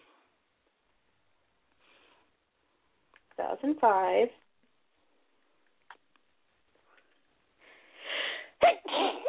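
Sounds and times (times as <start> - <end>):
speech: 3.4 - 4.4
loud sneeze: 8.6 - 9.2.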